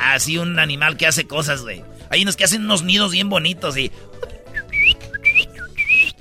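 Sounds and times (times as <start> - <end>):
speech: 0.2 - 4.3
person whistling an imitation of a courting bird's song: 4.5 - 6.1.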